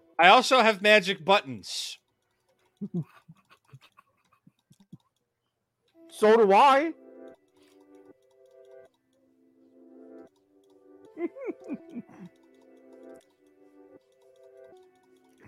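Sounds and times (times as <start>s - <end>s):
speech: 0.2s - 2.0s, 2.8s - 3.2s, 6.1s - 7.0s
mouse and keyboard clicking while gaming: 2.0s - 5.3s, 7.3s - 9.2s, 10.2s - 15.4s
person laughing: 2.8s - 5.0s, 11.1s - 12.4s.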